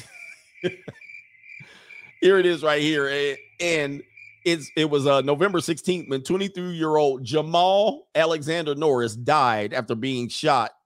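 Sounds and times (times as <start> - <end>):
high-pitched cricket trill: 0.0 - 6.6
speech: 0.6 - 1.0, 2.2 - 10.8.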